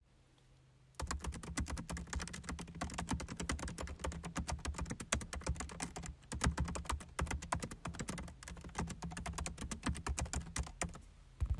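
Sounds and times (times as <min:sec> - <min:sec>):
typewriter typing: 0:01.0 - 0:11.0.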